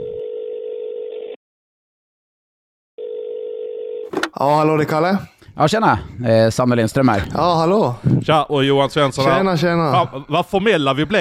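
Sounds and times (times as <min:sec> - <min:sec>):
ringback tone of an outgoing telephone call: 0:00.0 - 0:01.4, 0:03.0 - 0:04.2
speech: 0:04.4 - 0:11.1.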